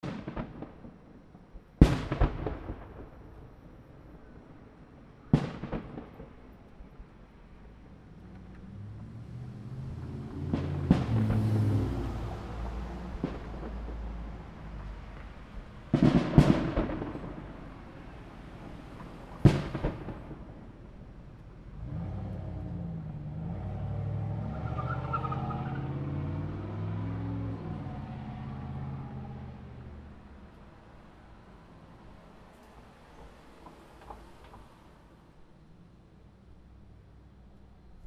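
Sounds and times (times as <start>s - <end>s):
fireworks: 0.0s - 8.6s, 10.0s - 21.5s
truck peeling out: 8.2s - 13.9s, 21.7s - 30.0s.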